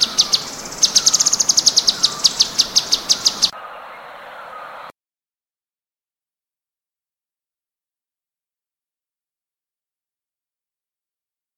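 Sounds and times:
cucak cungkok chirping: 0:00.0 - 0:04.9.

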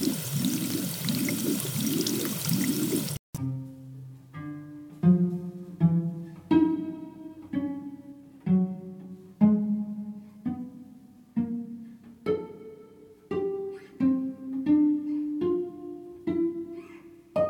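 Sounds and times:
water splashing as a man washes his face to cool it: 0:00.0 - 0:03.2
music: 0:03.4 - 0:17.4.

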